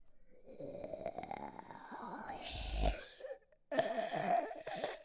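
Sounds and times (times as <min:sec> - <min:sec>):
zombie mob voice: 0:01.0 - 0:04.7.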